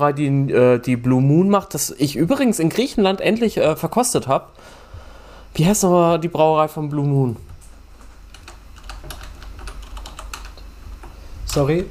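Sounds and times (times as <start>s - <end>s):
speech: 0.0s - 4.8s, 5.6s - 7.5s, 11.6s - 11.8s
rapid typing on a computer keyboard while taking notes: 8.0s - 11.8s.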